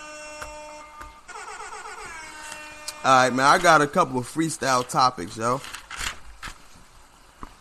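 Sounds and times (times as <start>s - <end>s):
speech: 3.0s - 5.8s
paper pages being shuffled: 3.3s - 6.8s.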